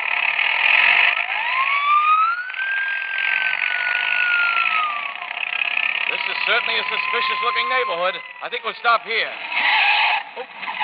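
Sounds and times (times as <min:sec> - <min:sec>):
police motorcycle engine droning: 0:00.0 - 0:10.8
police motorcycle siren wailing: 0:01.2 - 0:08.8
speech: 0:06.5 - 0:09.7, 0:10.4 - 0:10.8.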